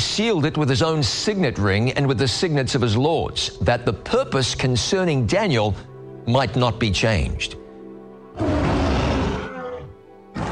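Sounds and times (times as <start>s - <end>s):
speech: 0.1s - 7.6s
lion roaring: 8.4s - 10.5s.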